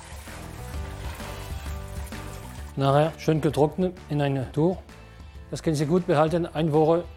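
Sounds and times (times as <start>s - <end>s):
cold tap water running and splashing over fish being rinsed: 0.0s - 2.8s
speech: 2.8s - 4.9s, 5.5s - 7.1s.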